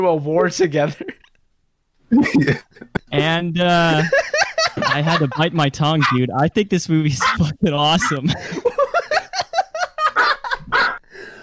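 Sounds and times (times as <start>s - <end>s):
speech: 0.0s - 1.2s, 2.1s - 8.7s
laughter: 2.1s - 3.1s, 3.8s - 11.0s
dog barking and yipping: 10.2s - 11.0s.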